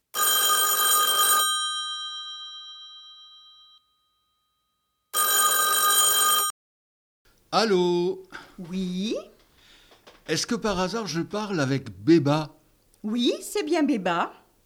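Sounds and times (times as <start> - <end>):
metallic telephone bell ringing after a number is dialled: 0.1 - 4.3, 5.1 - 6.5
speech: 7.5 - 9.4, 10.3 - 14.4.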